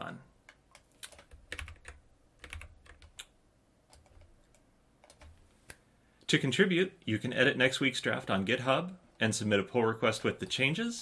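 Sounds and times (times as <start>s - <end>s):
typing on a computer keyboard: 0.4s - 3.3s, 3.9s - 5.4s
speech: 6.3s - 11.0s.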